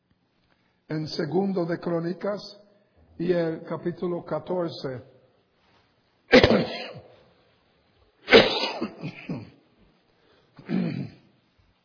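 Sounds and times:
speech: 0:00.9 - 0:02.6, 0:03.2 - 0:05.1
person coughing harshly: 0:06.3 - 0:07.2, 0:08.3 - 0:09.6, 0:10.6 - 0:11.3.

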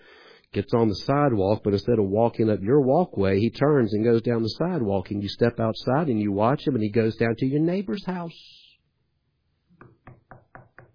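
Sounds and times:
speech: 0:00.5 - 0:08.6
knocking on the front door of a house: 0:09.8 - 0:10.9.

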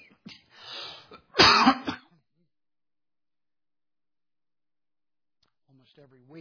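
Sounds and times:
person clearing throat with a low rasp: 0:01.1 - 0:02.1
person coughing harshly: 0:01.1 - 0:02.1
speech: 0:06.0 - 0:06.3.

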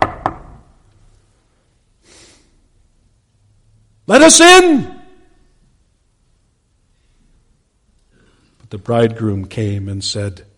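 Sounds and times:
knocking on a door: 0:00.0 - 0:00.5
soft breathy hiss: 0:01.0 - 0:03.3, 0:05.5 - 0:08.7
speech: 0:04.1 - 0:04.9, 0:08.7 - 0:10.5.

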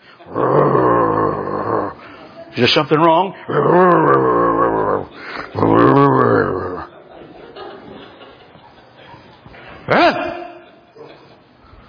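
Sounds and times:
person imitating an angry dog's growl: 0:00.2 - 0:02.0, 0:03.5 - 0:06.9
speech: 0:02.6 - 0:04.5
laughter: 0:05.0 - 0:11.8.

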